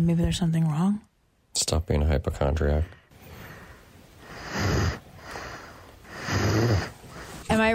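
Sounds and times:
speech: 0:00.0 - 0:03.0
young child snoring loudly: 0:04.2 - 0:07.4.

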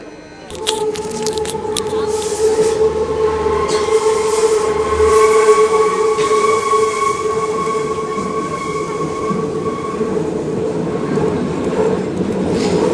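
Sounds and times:
S-Bahn commuter train squealing: 0:00.5 - 0:11.2
S-Bahn commuter train wheels rumbling on track: 0:00.5 - 0:12.9.

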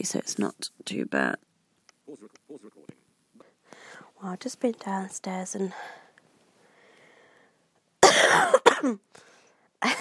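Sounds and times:
speech: 0:00.0 - 0:01.5, 0:04.2 - 0:06.0, 0:08.2 - 0:09.9
faint breathy trail after coughing: 0:05.8 - 0:07.6
person coughing after taking cough medicine: 0:08.0 - 0:09.0.

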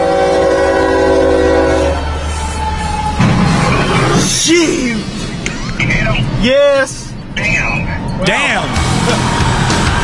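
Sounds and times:
train horn blaring: 0:00.0 - 0:03.2
train cars rolling past on rails: 0:00.0 - 0:10.0.

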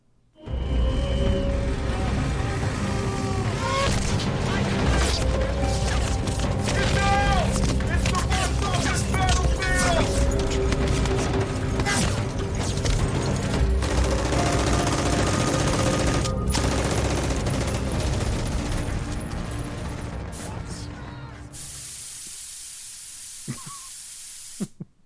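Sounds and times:
overlapping cries in a battle sound effect: 0:00.5 - 0:04.8, 0:06.7 - 0:10.7, 0:20.3 - 0:21.6
dense bursts of rapid gunfire in a battle sound effect: 0:03.8 - 0:20.5
sharp hissing spray: 0:21.5 - 0:24.8.

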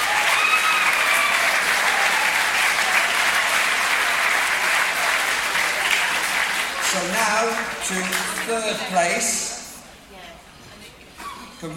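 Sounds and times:
sizable audience applauding: 0:00.0 - 0:09.0
speech: 0:07.4 - 0:09.4, 0:11.6 - 0:11.7.

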